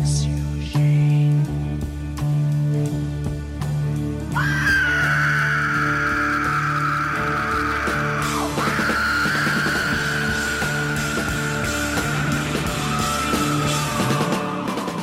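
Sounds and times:
loud dense rock music with pounding bass and drums: 0.0 - 15.0
man screaming in a long sustained wail: 4.3 - 15.0.

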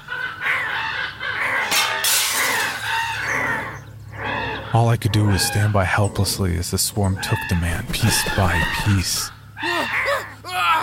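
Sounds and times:
flock of crows cawing: 0.0 - 6.1, 7.2 - 10.8
glass shattering: 1.7 - 2.9
speech: 4.8 - 9.4.

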